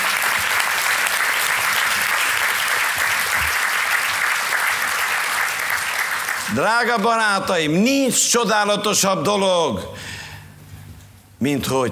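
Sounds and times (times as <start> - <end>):
sizable audience applauding: 0.0 - 7.0
speech: 6.6 - 10.2, 11.4 - 11.8.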